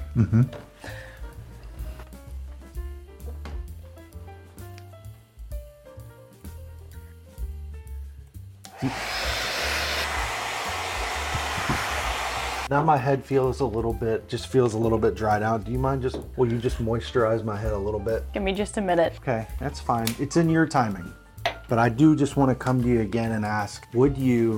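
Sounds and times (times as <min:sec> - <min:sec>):
speech: 0:00.2 - 0:01.1, 0:08.8 - 0:09.1, 0:12.7 - 0:24.5
hair dryer blowing on wet hair: 0:08.7 - 0:12.7.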